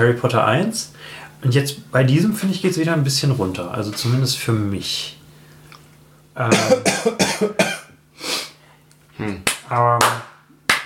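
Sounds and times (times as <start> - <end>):
speech: 0.0 - 5.2, 6.4 - 8.4, 9.2 - 10.3
faint steady hum: 0.0 - 10.8
harsh hacking coughing fit: 6.5 - 8.0.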